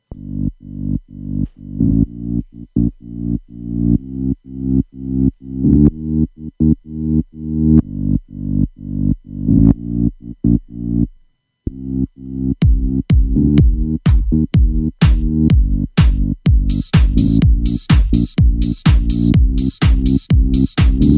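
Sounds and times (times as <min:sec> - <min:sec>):
simple buzzy slightly distorted synth bass line: 0:00.1 - 0:11.1, 0:11.7 - 0:21.1.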